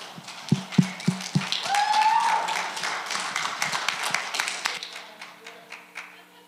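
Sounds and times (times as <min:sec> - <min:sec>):
audience applause welcoming a pastor: 0:00.0 - 0:06.2
scattered cheers from the audience: 0:01.5 - 0:02.9.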